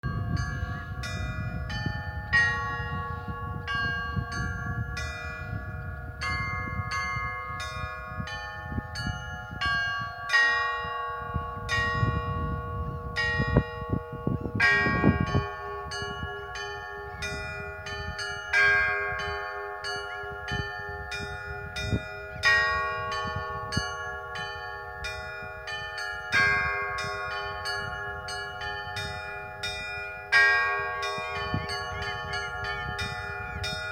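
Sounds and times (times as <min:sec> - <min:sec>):
glockenspiel: 0:00.0 - 0:33.9.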